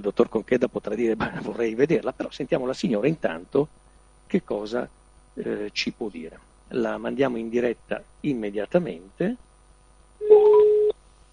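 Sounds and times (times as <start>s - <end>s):
speech: 0.0s - 9.5s
steady electronic telephone tone of a phone call being placed: 10.2s - 11.0s.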